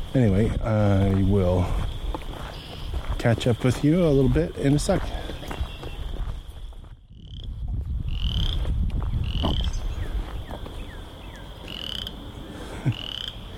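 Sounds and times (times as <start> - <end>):
speech: 0.1 - 1.9, 3.2 - 5.2
frog croaking vigorously: 7.1 - 9.9, 10.5 - 13.5.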